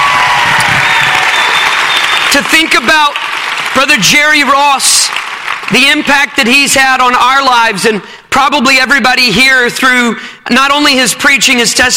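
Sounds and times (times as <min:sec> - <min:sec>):
large audience applauding at a youth conference: 0:00.0 - 0:06.1
speech: 0:02.4 - 0:11.9.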